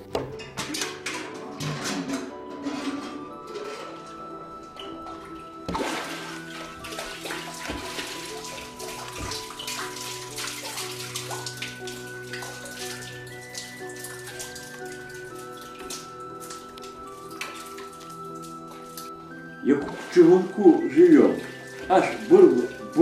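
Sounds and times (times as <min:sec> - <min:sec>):
metallic creaks and clanks: 0:00.0 - 0:05.0
water splashing and pouring from a well: 0:00.6 - 0:23.0
speech: 0:20.2 - 0:22.1.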